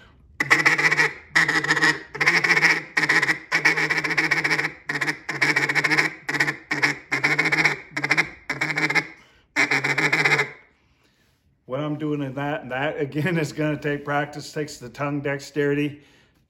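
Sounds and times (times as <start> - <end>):
duck call blowing a rattling feed chatter: 0.4 - 10.6
speech: 13.0 - 16.1.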